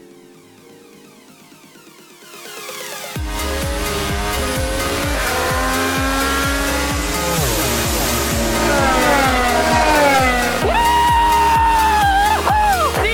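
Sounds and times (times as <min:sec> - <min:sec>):
race car engines roaring at the Indianapolis 500 finish: 0:03.3 - 0:13.0.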